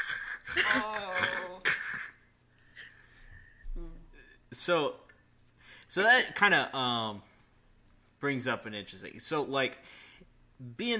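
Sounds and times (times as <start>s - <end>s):
voice imitating heavy congested mouth breathing: 0.0s - 2.2s
speech: 4.6s - 5.0s, 5.9s - 7.3s, 8.2s - 10.0s, 10.6s - 10.9s.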